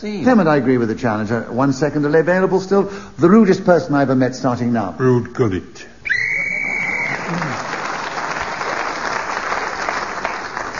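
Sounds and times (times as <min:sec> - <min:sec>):
speech: 0:00.0 - 0:06.3
sharp whistle blast blown to end a round of a game: 0:06.0 - 0:07.3
sustained applause from a live audience: 0:06.2 - 0:10.7.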